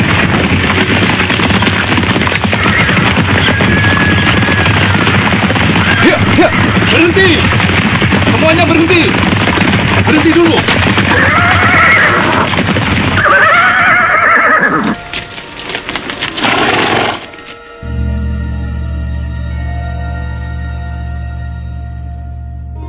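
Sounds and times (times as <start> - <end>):
horses neighing and whinnying: 0.0 - 15.4
hoofbeats of a riding party on horseback: 0.0 - 22.8.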